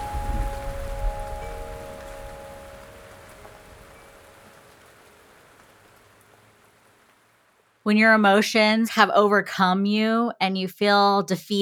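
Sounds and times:
rain pattering on a hard surface: 0.0s - 8.5s
speech: 7.9s - 11.6s.

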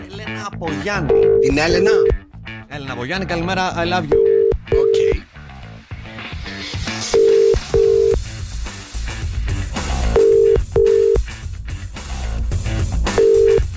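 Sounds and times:
music: 0.0s - 13.7s
speech: 0.4s - 2.2s, 2.8s - 4.9s
telephone ringback tone in paired bursts: 1.1s - 2.2s, 4.1s - 5.2s, 7.1s - 8.2s, 10.2s - 11.2s, 13.2s - 13.7s.

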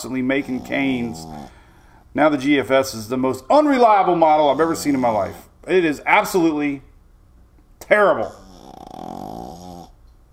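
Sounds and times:
small dog snoring: 0.0s - 1.8s, 4.4s - 5.5s, 8.2s - 10.0s
speech: 0.0s - 6.9s, 7.8s - 8.4s.

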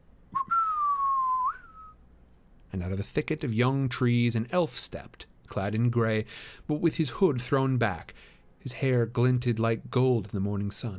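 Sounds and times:
low human whistle imitating a bird call: 0.3s - 2.0s
speech: 2.7s - 10.9s.

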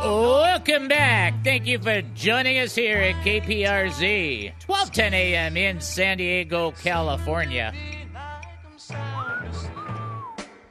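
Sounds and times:
speech: 0.0s - 8.0s
song's instrumental backing with steady bass and percussion: 0.0s - 10.6s
whistled melody with smooth sliding notes: 9.0s - 10.6s.

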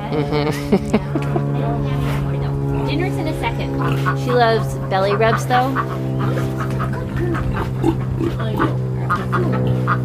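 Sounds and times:
laughter: 0.0s - 1.8s
constant low hum: 0.0s - 10.0s
speech: 0.1s - 10.0s
pig grunting and snuffling: 3.6s - 10.0s.

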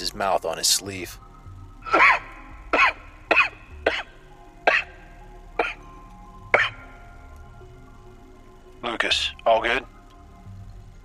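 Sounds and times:
speech: 0.0s - 1.3s
faint hum: 0.0s - 11.0s
man coughing: 1.9s - 2.2s, 5.6s - 5.8s.

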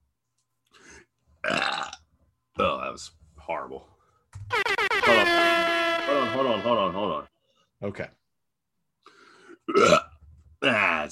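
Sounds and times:
person burping: 1.4s - 2.0s, 9.6s - 10.8s
speech: 2.6s - 8.2s, 9.7s - 10.0s.

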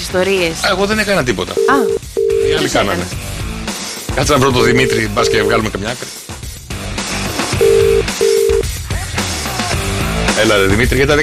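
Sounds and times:
music: 0.0s - 11.2s
speech: 0.1s - 3.3s, 4.2s - 6.2s, 10.4s - 11.2s
telephone dialing tones: 1.6s - 2.7s, 4.6s - 5.7s, 7.6s - 8.6s.

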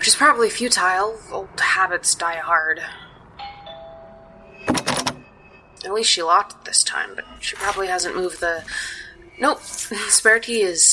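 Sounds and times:
speech: 0.0s - 3.1s, 5.8s - 10.9s
doorbell chiming at the front door of a house: 3.4s - 6.5s.

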